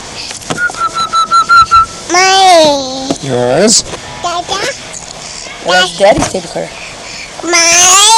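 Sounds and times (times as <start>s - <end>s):
child whistling: 0.6s - 2.1s
speech: 2.6s - 4.0s, 5.6s - 6.8s, 7.4s - 8.0s.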